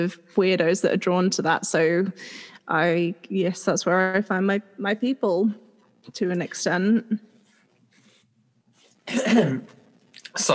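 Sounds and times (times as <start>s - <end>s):
speech: 0.0s - 7.3s, 9.1s - 9.8s, 10.4s - 10.5s
person sneezing: 9.1s - 9.7s.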